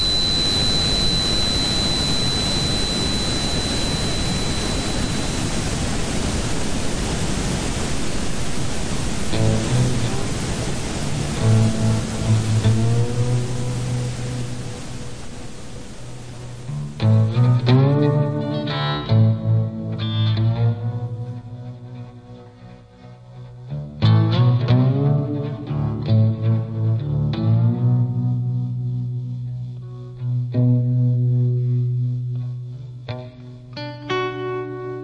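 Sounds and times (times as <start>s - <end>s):
brief pulsing tones: 0.0s - 17.3s
software-generated broadband white noise hiss: 0.0s - 35.0s.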